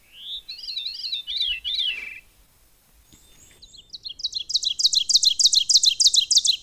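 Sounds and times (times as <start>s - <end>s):
loud rapidly repeated bird call: 0.0s - 3.6s
veery thrush singing a breathy spiraling phrase: 0.0s - 5.9s.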